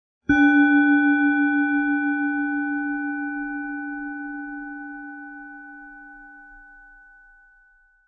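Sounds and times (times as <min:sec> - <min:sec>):
Mars planetary singing bowl struck with a mallet: 0:00.3 - 0:08.0.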